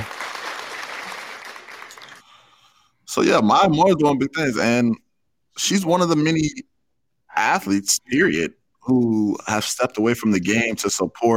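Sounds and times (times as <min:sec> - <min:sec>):
applause from several people clapping: 0:00.0 - 0:02.4
speech: 0:03.2 - 0:05.0, 0:05.6 - 0:06.7, 0:07.4 - 0:11.3.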